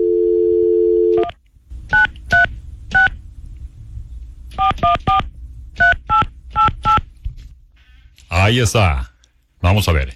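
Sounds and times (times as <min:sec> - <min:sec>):
steady telephone dial tone: 0:00.0 - 0:01.3
low hum: 0:00.0 - 0:10.1
speech: 0:08.5 - 0:10.1.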